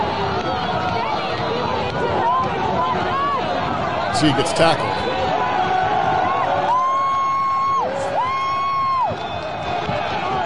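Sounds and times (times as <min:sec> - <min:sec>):
crowd yelling and booing: 0:00.0 - 0:10.4
speech: 0:04.2 - 0:05.0.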